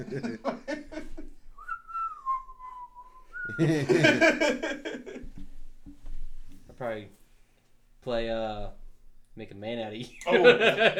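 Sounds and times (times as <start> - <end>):
speech: 0.0 - 0.7, 3.5 - 4.9, 6.8 - 7.2, 8.0 - 8.8, 9.4 - 10.9
loud laughter: 0.0 - 1.3, 3.6 - 5.2, 10.2 - 10.9
person whistling a short jaunty tune: 1.6 - 3.8.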